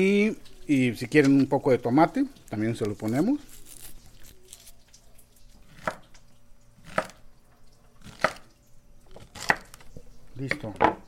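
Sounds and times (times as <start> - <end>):
speech: 0.0 - 3.6, 10.4 - 10.9
knife peeling and chopping pacaya palm flowers for a salad: 5.7 - 6.0, 6.8 - 7.2, 8.0 - 8.5, 9.1 - 9.9.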